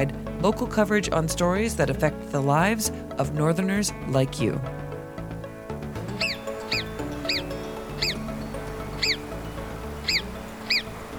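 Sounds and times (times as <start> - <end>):
speech: 0.0 - 4.8
steady background music: 0.0 - 11.1
hoary marmot warning whistles: 6.1 - 11.0.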